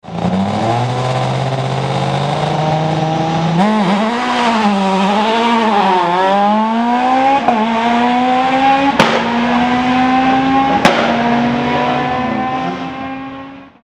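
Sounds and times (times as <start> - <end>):
Renault Clio S1600 rally car engine starting: 0.0 - 13.6.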